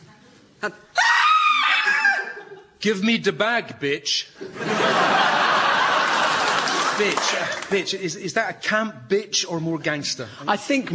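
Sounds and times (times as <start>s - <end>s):
speech: 0.6s - 1.0s, 2.8s - 5.4s, 7.0s - 10.9s
woman screaming: 1.0s - 2.5s
laughter: 1.9s - 2.8s, 4.4s - 7.9s.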